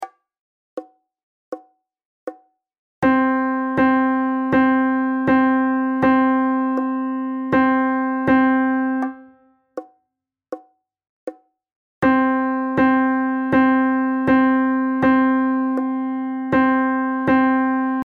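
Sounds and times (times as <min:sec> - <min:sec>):
keyboard rhythm: 0:03.0 - 0:09.4, 0:12.0 - 0:18.0.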